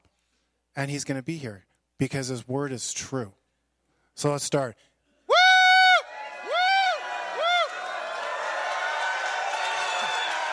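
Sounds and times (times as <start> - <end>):
speech: 0.8 - 3.4, 4.2 - 4.9
church audience yelling and shouting praise: 5.3 - 10.5
many voices cheering together in a church: 5.3 - 10.5.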